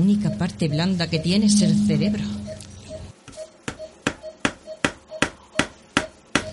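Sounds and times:
speech: 0.0s - 2.4s
hammer tapping on a hard surface: 3.6s - 6.5s.

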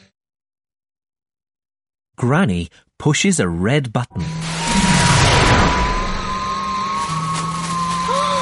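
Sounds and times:
speech: 2.2s - 5.1s
motorbike engine roaring: 4.3s - 8.4s.

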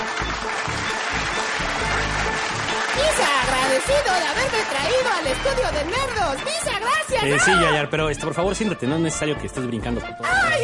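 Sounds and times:
audience applause: 0.0s - 7.7s
speech: 3.8s - 10.6s.

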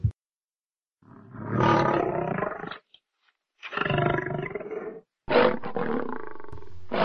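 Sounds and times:
lion roaring: 1.1s - 2.8s, 3.6s - 7.0s.

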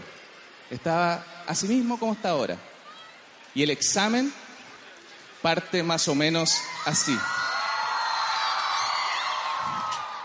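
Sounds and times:
speech: 0.7s - 2.7s, 3.6s - 4.4s, 5.4s - 7.5s
small group of people whooping and shouting excitedly: 6.4s - 10.2s.

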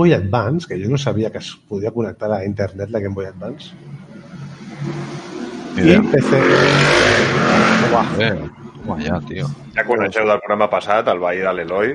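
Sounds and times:
speech: 0.0s - 4.0s, 4.8s - 5.2s, 5.8s - 11.9s
people talking quietly: 0.0s - 4.5s, 5.7s - 6.8s, 7.4s - 11.9s
motorcycle engine revving outside: 4.4s - 8.3s.

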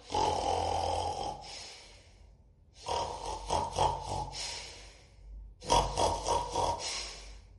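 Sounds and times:
voice imitating snoring with rasping breaths from deep in the chest: 0.0s - 1.7s, 2.8s - 4.8s, 5.6s - 7.5s.

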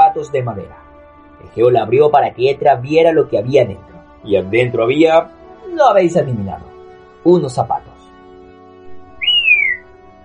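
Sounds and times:
speech: 0.2s - 7.9s
human whistle of admiration: 9.2s - 9.9s.

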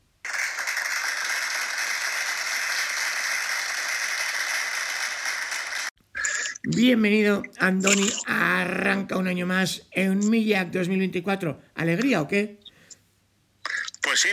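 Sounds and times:
crowd applauding: 0.2s - 6.0s
speech: 6.6s - 12.6s, 14.2s - 14.3s.

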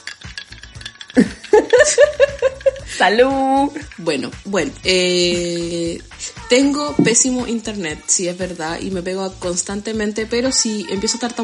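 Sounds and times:
laughter: 1.2s - 3.0s
speech: 1.2s - 11.4s
pisco glugging from bottle neck into a small glass: 6.9s - 7.3s.

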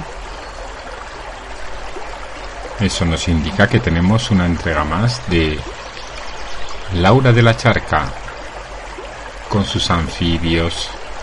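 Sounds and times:
flowing stream water: 0.0s - 11.2s
speech: 2.8s - 5.8s, 6.9s - 8.2s, 9.5s - 11.0s.

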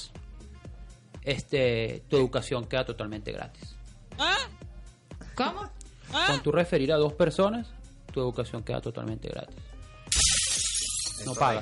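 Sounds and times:
speech: 1.2s - 4.5s, 5.4s - 9.7s, 11.2s - 11.6s
glass shards tinkling: 10.1s - 11.6s
glass shattering: 10.1s - 11.6s.

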